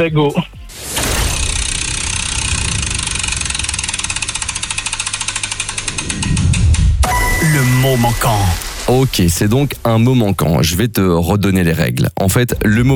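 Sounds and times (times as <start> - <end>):
speech: 0.0 - 0.9, 7.5 - 12.9
steady whirring of spinning game wheel: 0.8 - 7.1
low rumble of spinning game wheel: 1.1 - 4.8, 5.5 - 11.0
spinning game wheel clicking: 1.4 - 8.8.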